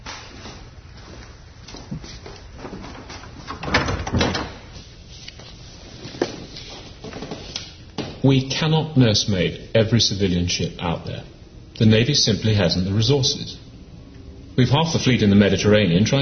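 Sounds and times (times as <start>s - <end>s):
faint shuffling movement: 0.0s - 3.6s, 4.6s - 7.6s
door swinging shut with a dull thud and short scrape: 3.0s - 4.7s
speech: 8.3s - 13.6s, 14.6s - 16.1s.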